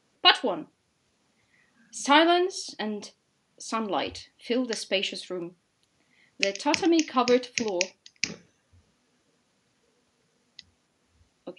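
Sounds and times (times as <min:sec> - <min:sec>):
speech: 0:00.4 - 0:00.8, 0:01.9 - 0:05.6, 0:06.4 - 0:08.0
mechanical typewriter key clicks: 0:06.4 - 0:08.4.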